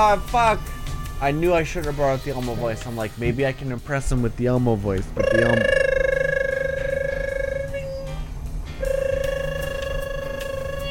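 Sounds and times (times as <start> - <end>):
speech: 0.0 - 5.8
elevator phone ringing with fast-warbling electronic tone: 5.2 - 8.2, 8.8 - 10.8.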